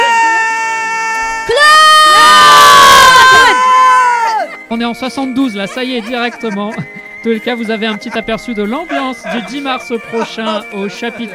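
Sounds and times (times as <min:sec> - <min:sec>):
group shouting and cheering: 0:00.0 - 0:04.7, 0:08.8 - 0:11.3
laughter: 0:02.2 - 0:11.3
speech: 0:04.7 - 0:11.3.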